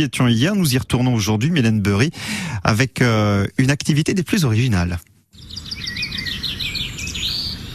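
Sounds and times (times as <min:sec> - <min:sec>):
speech: 0:00.0 - 0:05.1
small wild birds chirping and singing outdoors: 0:05.3 - 0:07.7.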